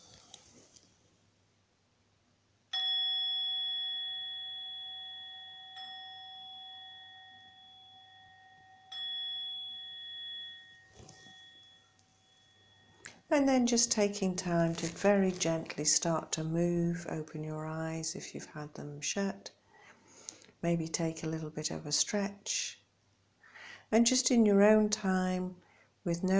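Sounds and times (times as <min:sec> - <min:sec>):
meditation bell ringing: 0:02.7 - 0:13.4
speech: 0:13.3 - 0:19.6, 0:20.6 - 0:22.8, 0:23.9 - 0:26.3.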